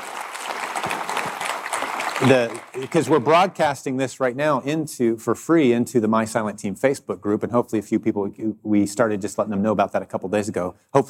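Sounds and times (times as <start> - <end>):
small crowd applauding: 0.0 - 3.6
speech: 2.2 - 11.0.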